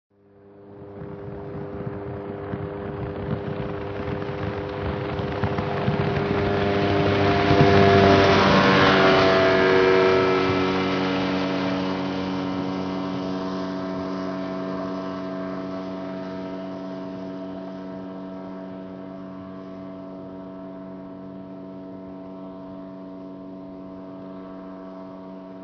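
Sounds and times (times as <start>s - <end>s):
motorboat passing: 0.2s - 25.6s.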